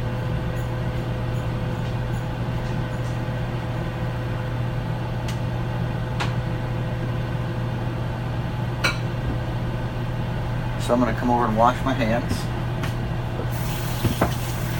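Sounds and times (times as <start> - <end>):
oven humming: 0.0 - 14.7
speech: 10.9 - 12.6.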